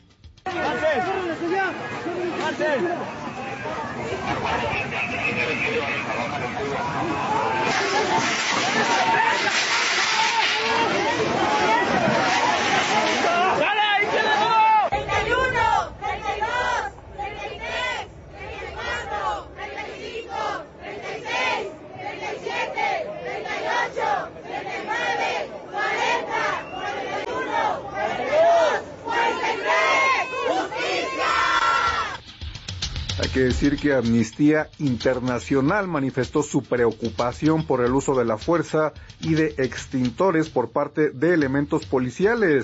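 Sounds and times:
protest crowd chanting slogans: 0.5 - 32.2
speech: 1.0 - 9.8, 33.4 - 42.6.

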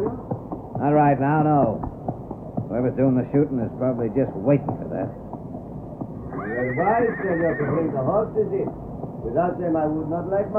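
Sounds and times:
speech: 0.8 - 1.9, 2.7 - 5.2, 6.6 - 10.5
horse whinnying: 6.2 - 8.1.

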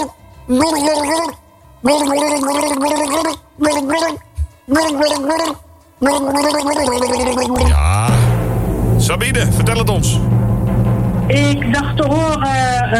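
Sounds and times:
speech: 0.0 - 8.2, 9.0 - 10.4, 11.3 - 12.9
person gargling a song tune: 0.5 - 8.1.

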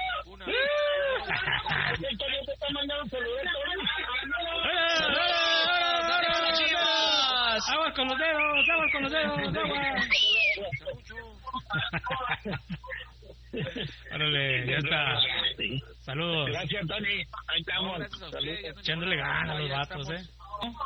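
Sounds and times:
group of butchers shouting and whooping over a phone or radio line: 0.0 - 1.7, 3.8 - 10.7
laughter: 0.4 - 14.4
speech: 1.9 - 5.4, 7.6 - 20.8.

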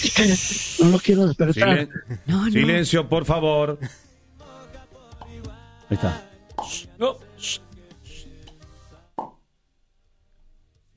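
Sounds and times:
speech: 0.0 - 4.0, 5.9 - 7.7
cork-like pop: 8.4 - 9.4.

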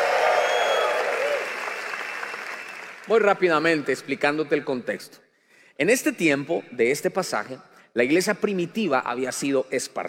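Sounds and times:
crowd applauding: 0.0 - 3.7
speech: 3.1 - 5.2, 5.8 - 10.0.

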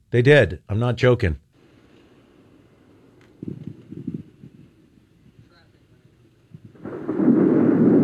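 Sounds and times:
speech: 0.1 - 1.4
deep rolling thunder: 1.6 - 8.0.

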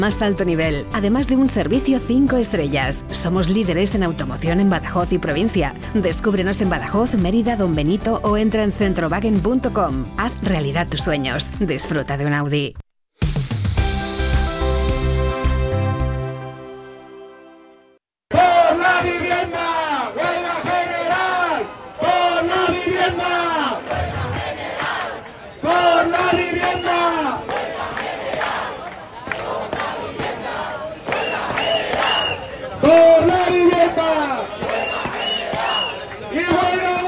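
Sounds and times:
speech: 0.0 - 12.8
music: 0.0 - 18.0
crowd chanting slogans at a tenants' housing-rights protest in Mérida: 18.3 - 37.0.

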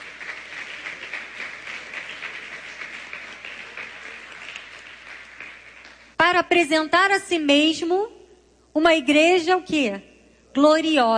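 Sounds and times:
congregation applauding: 0.0 - 6.2
speech: 6.3 - 8.2, 8.8 - 11.1.

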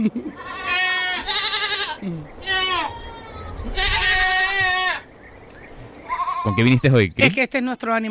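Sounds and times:
speech: 0.0 - 0.6, 6.4 - 8.0
several goats bleating: 0.3 - 5.1, 6.0 - 6.8.

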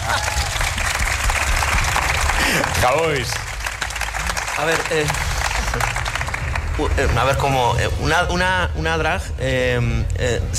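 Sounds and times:
audience applause: 0.0 - 7.8
speech: 2.8 - 3.4, 4.6 - 5.9, 6.8 - 10.5.

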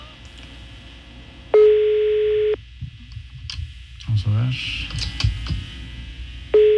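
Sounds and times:
electronic phone ringback tone: 1.6 - 2.6
speech: 4.1 - 5.6.

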